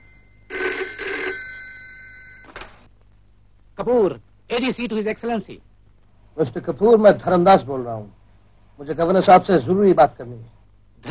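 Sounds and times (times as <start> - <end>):
old-fashioned telephone bell ringing: 0.0 - 2.7
speech: 3.8 - 5.7, 6.4 - 8.2, 8.8 - 11.0.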